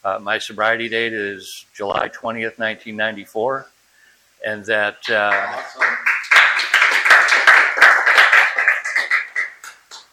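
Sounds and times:
speech: 0:00.0 - 0:03.8, 0:04.4 - 0:06.0
room full of people clapping: 0:05.0 - 0:10.1.

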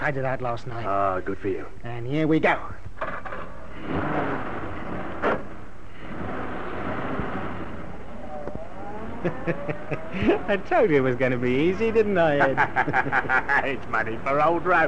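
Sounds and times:
speech: 0:00.0 - 0:02.9, 0:09.2 - 0:14.8
car engine rumbling after ignition key start: 0:02.8 - 0:14.8
clunk: 0:03.0 - 0:03.6
laughter: 0:09.2 - 0:11.0, 0:12.1 - 0:14.2.

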